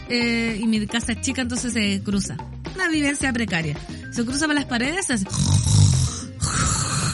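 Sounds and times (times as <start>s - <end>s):
speech: 0.1s - 5.8s
voice imitating a mother's snoring: 5.2s - 7.1s.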